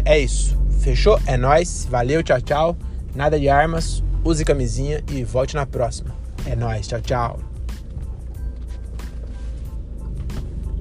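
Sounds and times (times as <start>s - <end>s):
car engine and road noise: 0.0s - 10.7s
speech: 0.1s - 7.5s.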